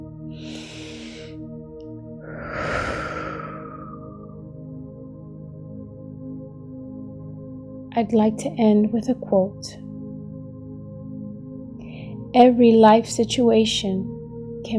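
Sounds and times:
full deep human breath: 0.4 - 1.4, 2.2 - 4.4, 11.8 - 12.2
speech: 8.0 - 9.8, 12.4 - 14.1.

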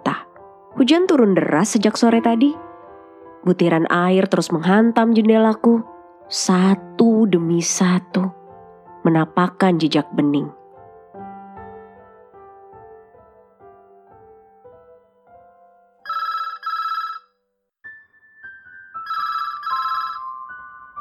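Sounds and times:
speech: 0.7 - 2.7, 3.4 - 8.4, 9.0 - 10.6
telephone electronic ringtone with stepped melody and trilling ring bursts: 16.0 - 17.4, 19.0 - 20.6.

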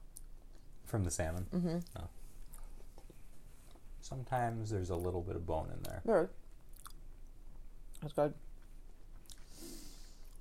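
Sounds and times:
faint low hum: 0.0 - 10.3
speech: 0.9 - 2.2, 4.0 - 6.4, 8.0 - 8.5
person chewing food: 1.8 - 4.0, 5.8 - 10.3.

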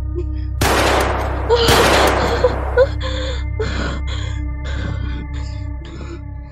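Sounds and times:
low hum: 0.0 - 6.2
loud sharp gunshots with tail: 0.6 - 3.0.

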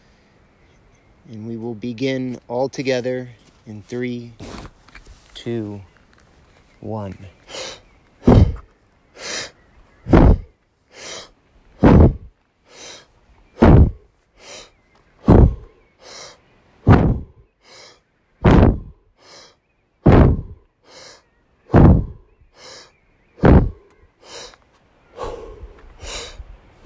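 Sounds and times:
speech: 1.3 - 4.5, 5.4 - 5.9, 6.8 - 7.4
rapid forceful breathing in and out through mouth: 7.4 - 26.8.

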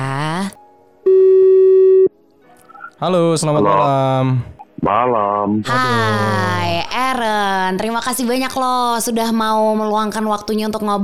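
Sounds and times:
telephone ringback tone: 1.1 - 2.1
speech: 3.0 - 11.0.

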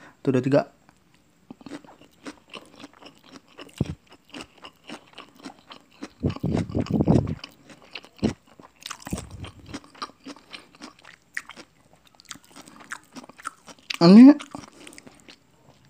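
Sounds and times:
speech: 0.2 - 0.8
crunchy chewing of raw cabbage with chili sambal: 0.9 - 15.8.

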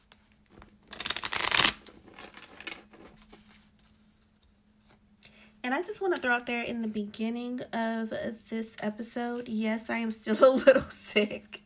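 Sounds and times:
tarot cards being shuffled: 0.0 - 5.0
tarot cards rustling and sliding as they are drawn: 0.1 - 4.4
speech: 5.6 - 11.6.

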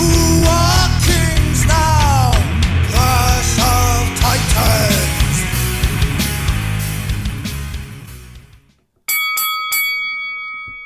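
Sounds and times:
loud dense music: 0.0 - 8.7
bright bell ringing with sustained metallic tone: 9.1 - 10.8.

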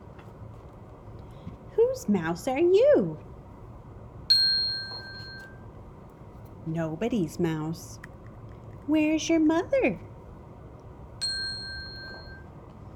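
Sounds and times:
low hum: 0.0 - 12.9
speech: 1.9 - 3.3, 6.7 - 8.1, 8.9 - 10.1
bright page-turn chime: 4.3 - 5.6, 11.2 - 12.5.

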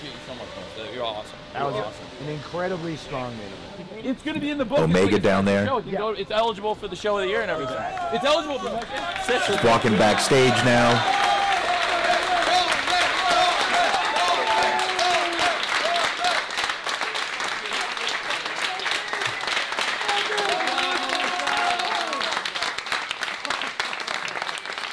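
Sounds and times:
speech: 0.8 - 11.2
overlapping voices and cheering chatter: 7.2 - 22.8
dense steady applause from a crowd: 7.7 - 24.9.

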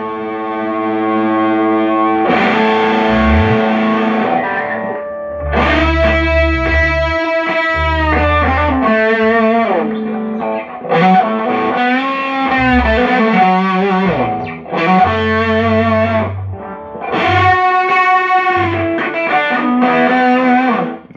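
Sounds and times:
heavily fuzzed electric guitar playing saturated chords: 0.0 - 21.1
low bass: 2.7 - 4.3, 5.2 - 10.0, 12.4 - 17.6, 18.4 - 19.0.

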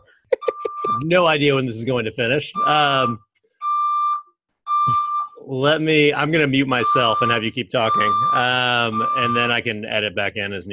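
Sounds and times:
apartment fire alarm blaring in two long electronic tones: 0.4 - 1.1, 2.5 - 5.4, 6.6 - 9.6
speech: 1.0 - 3.3, 4.9 - 10.7.

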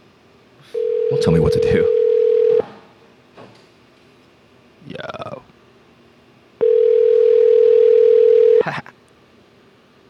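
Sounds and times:
speech: 0.6 - 2.0
telephone keypad tone on pharmacy automated phone menu: 0.8 - 2.6, 6.6 - 8.6.

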